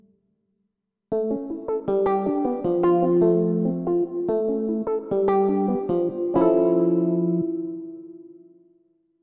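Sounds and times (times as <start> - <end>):
jazz music: 1.6 - 8.0.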